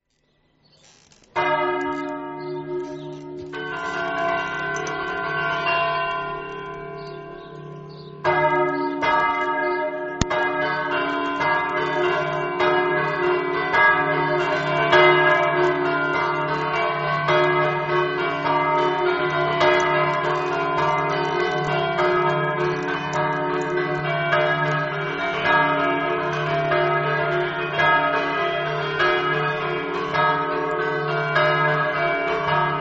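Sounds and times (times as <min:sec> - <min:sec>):
bells in Cercivento: 0:01.4 - 0:32.8.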